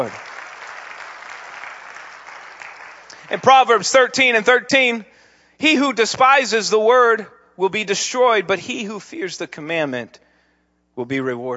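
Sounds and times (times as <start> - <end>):
speech: 0.0 - 0.2, 3.3 - 10.2, 11.0 - 11.5
church congregation clapping hands: 0.0 - 4.6.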